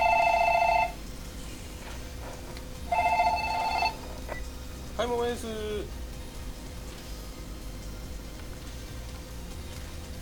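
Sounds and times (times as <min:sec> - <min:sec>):
telephone ringing in bright electronic bursts: 0:00.0 - 0:01.0, 0:02.9 - 0:04.4
speech: 0:05.1 - 0:06.0.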